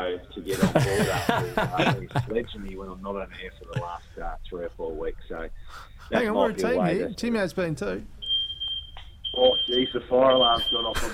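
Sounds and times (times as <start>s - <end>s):
speech: 0.4s - 8.2s, 9.4s - 11.1s
laughter: 0.5s - 2.6s, 3.7s - 4.0s, 10.6s - 11.1s
fire alarm sounding a steady piercing high-pitched tone: 8.2s - 11.0s.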